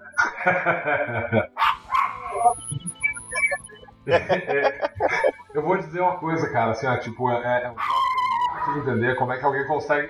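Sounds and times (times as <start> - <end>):
laughter: 0.2 - 1.6, 3.4 - 5.8
speech: 0.4 - 1.6, 4.0 - 7.9, 8.7 - 10.0
dog barking loudly into the microphone: 1.6 - 2.4, 7.8 - 8.9
dog yipping and whiny yelping: 1.6 - 2.6, 7.8 - 9.0.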